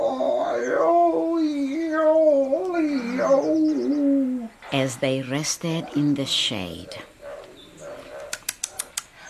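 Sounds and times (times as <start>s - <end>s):
voice imitating a hyena singing loudly: 0.0s - 4.6s
speech: 4.7s - 7.1s.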